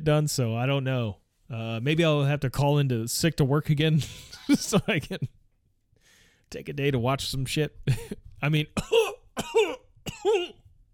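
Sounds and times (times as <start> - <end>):
speech: 0.0 - 5.4, 6.5 - 10.6
harsh coughs: 8.8 - 10.7.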